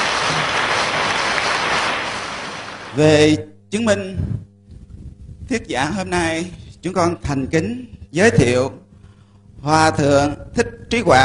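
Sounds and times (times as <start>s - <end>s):
audience applause in a hall at a ceremony: 0.0s - 3.0s
speech: 3.0s - 4.5s, 5.5s - 8.8s, 9.6s - 11.2s.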